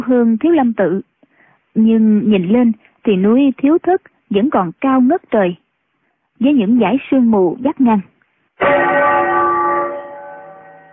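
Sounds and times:
speech: 0.0 - 1.1, 1.8 - 5.6, 6.4 - 9.4
Buddhist temple bell ringing, carried on the wind: 8.6 - 10.9.

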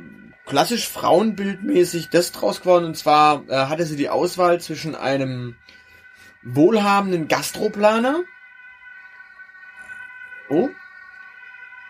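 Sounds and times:
emergency vehicle siren wailing: 0.0 - 11.8
speech: 0.5 - 5.8, 6.4 - 8.3, 10.5 - 10.8.

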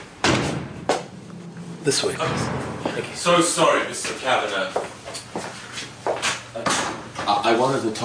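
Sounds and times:
heavy door bang: 0.2 - 4.6
door opening and swinging shut: 1.3 - 3.8
speech: 1.9 - 4.9, 7.5 - 8.0.

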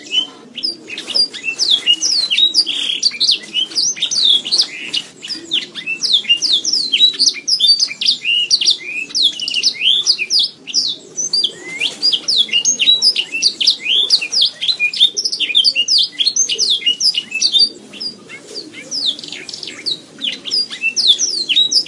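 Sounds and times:
domestic canary singing high quick chirps and sweeping whistles: 0.0 - 18.2, 18.8 - 21.8.

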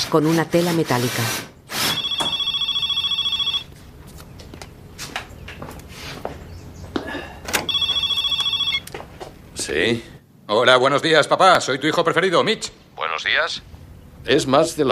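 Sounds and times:
speech: 0.1 - 1.5, 9.8 - 14.9
telephone ringing in a garage: 1.8 - 3.8, 7.6 - 9.0.

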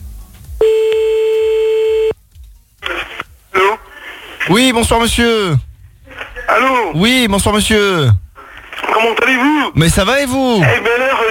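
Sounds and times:
telephone ringback tone on an outgoing call: 0.6 - 2.1
speech: 4.5 - 5.7, 6.5 - 8.2, 9.0 - 11.3.

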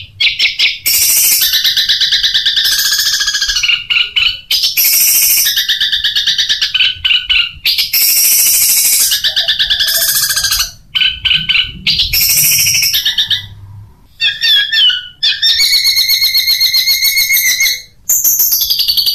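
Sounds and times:
long-tailed shrike singing: 0.0 - 19.1.

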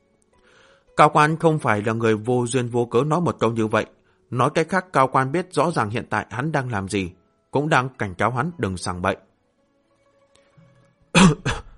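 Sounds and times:
speech: 1.0 - 9.3, 11.2 - 11.6
woman giving sharp dry coughs: 11.2 - 11.7.

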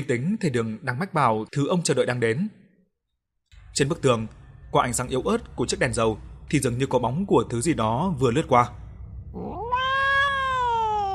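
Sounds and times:
speech: 0.0 - 2.6, 3.7 - 9.6
black cat yowling: 9.4 - 11.1.

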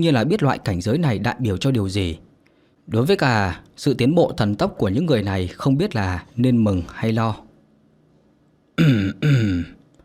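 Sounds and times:
speech: 0.0 - 2.3, 2.9 - 7.4, 8.8 - 9.8
dry throat-clearing cough of an old man: 8.8 - 9.8.

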